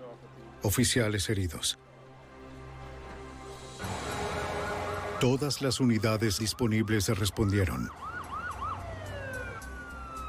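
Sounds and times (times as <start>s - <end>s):
speech: 0.6s - 1.9s, 5.2s - 8.1s
police patrol car sirens wailing: 3.8s - 10.2s.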